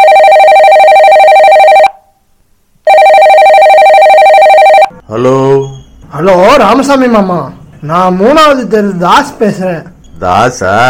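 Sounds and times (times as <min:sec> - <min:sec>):
ringback tone of an outgoing phone call: 0:00.0 - 0:02.1, 0:02.9 - 0:05.0
speech: 0:05.2 - 0:05.4, 0:06.2 - 0:10.8.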